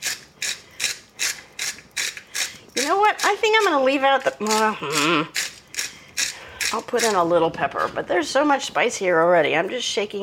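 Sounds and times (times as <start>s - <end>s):
salt grinder cracking coarse sea salt: 0.0s - 7.3s
speech: 2.9s - 5.4s, 6.7s - 10.2s.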